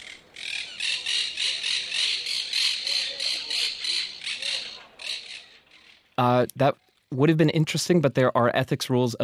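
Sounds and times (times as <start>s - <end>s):
monk parakeet squawking: 0.4s - 6.0s
speech: 6.2s - 9.2s.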